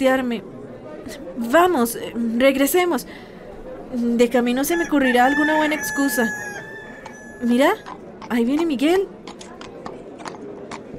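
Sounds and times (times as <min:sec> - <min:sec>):
speech: 0:00.0 - 0:03.3, 0:03.9 - 0:06.5, 0:07.4 - 0:09.2
horses' hooves clip-clopping on hard ground: 0:07.0 - 0:10.9.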